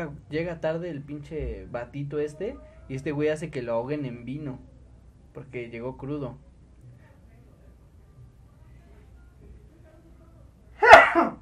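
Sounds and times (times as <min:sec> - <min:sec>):
speech: 0:00.0 - 0:04.7, 0:05.4 - 0:06.5
person sneezing: 0:10.8 - 0:11.4.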